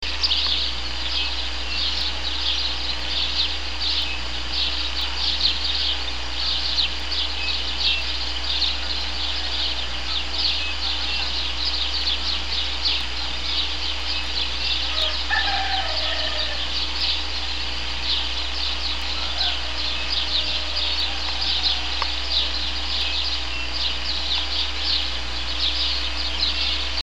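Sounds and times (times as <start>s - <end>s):
Passer domesticus house sparrow: 0.0s - 27.0s.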